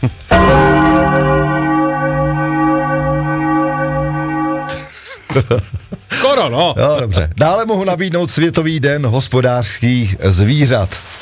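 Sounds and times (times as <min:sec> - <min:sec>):
speech: 0:00.0 - 0:00.2, 0:05.4 - 0:11.2
church bell strike: 0:00.3 - 0:04.9.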